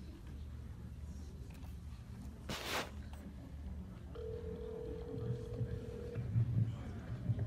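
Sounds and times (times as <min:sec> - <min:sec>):
quiet murmur: 0:00.0 - 0:07.4
rustling noise: 0:01.7 - 0:03.3
outgoing phone call ringback tone: 0:04.2 - 0:06.2.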